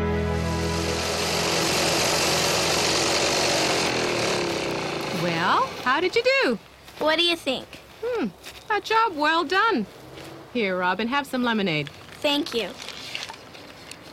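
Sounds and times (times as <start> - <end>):
lawnmower engine starting and mowing a small lawn: 0.1 - 6.3
speech: 5.9 - 12.8.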